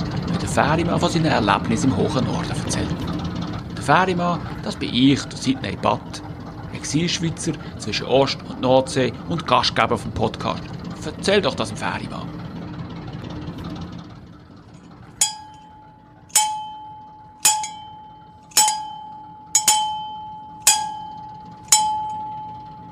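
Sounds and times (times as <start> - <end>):
low rumble: 0.0 - 22.9
speech: 0.6 - 2.8, 3.9 - 6.2, 6.9 - 12.4
ship's bell from a small canal barge ringing: 15.2 - 22.9.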